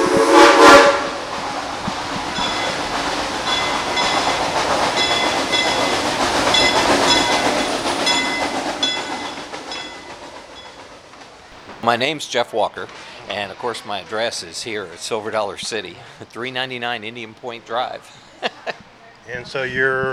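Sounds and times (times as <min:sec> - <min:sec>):
steam train whistle blasting: 0:00.0 - 0:01.6
steam train rumbling along: 0:00.0 - 0:20.1
speech: 0:11.9 - 0:20.1
laughter: 0:18.0 - 0:19.0.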